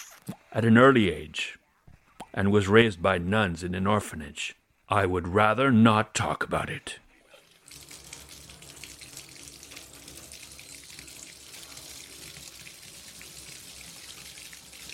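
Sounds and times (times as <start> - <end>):
speech: 0.5 - 1.6, 2.4 - 7.0
water pouring from a tap into a bath: 7.4 - 14.9.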